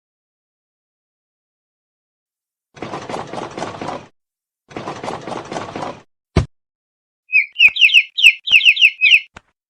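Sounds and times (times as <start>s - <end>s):
scratchy rattling bursts: 2.8s - 4.1s, 4.7s - 6.0s
chick peeping: 7.3s - 9.3s.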